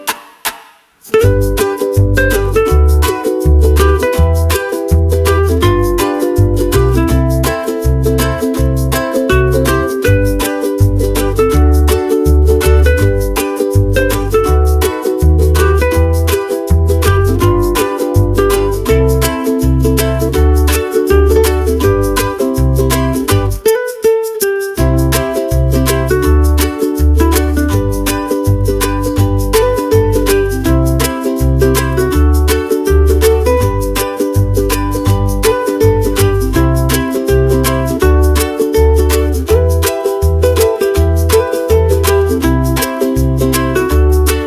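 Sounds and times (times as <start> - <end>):
happy background music: 1.1 - 44.4.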